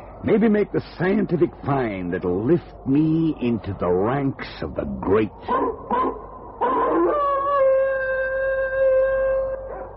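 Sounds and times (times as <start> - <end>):
speech: 0.2 - 6.2
sled dogs yelping: 5.4 - 7.7
sled dogs howling after finding a sled trail: 5.5 - 9.9.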